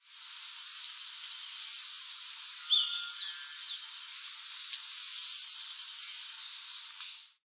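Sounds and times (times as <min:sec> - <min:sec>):
balanca-rabo-da-copa: 0:00.8 - 0:06.7.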